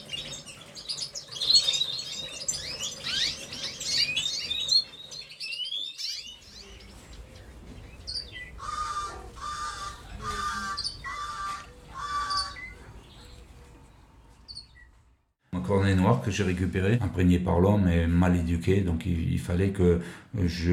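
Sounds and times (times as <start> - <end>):
caged birds squawking harshly: 0.0 - 6.9, 8.0 - 13.3
caged birds chirping: 0.0 - 16.1
speech: 15.7 - 20.7.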